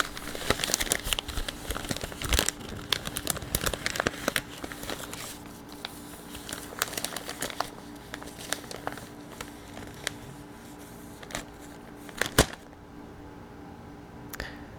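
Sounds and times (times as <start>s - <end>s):
newspaper being crumpled in the hands: 0.0s - 12.7s.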